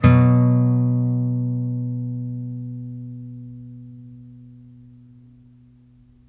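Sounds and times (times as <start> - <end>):
blues guitar playing fifths: 0.0 - 4.8.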